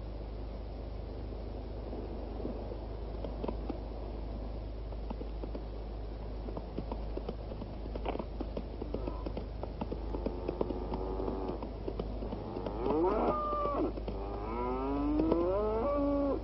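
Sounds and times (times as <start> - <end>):
constant hiss of noise: 0.0 - 16.4
horse hooves clip-clopping: 2.4 - 3.9, 4.8 - 16.4.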